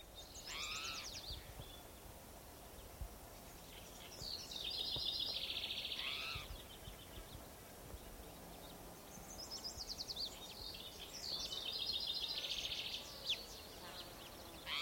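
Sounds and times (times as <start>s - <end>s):
background hiss: 0.0s - 14.7s
spotted towhee giving cries on a trail at Gibson Jack Creek, Bannock County, Idaho: 0.3s - 1.5s, 5.8s - 6.6s, 14.6s - 14.7s.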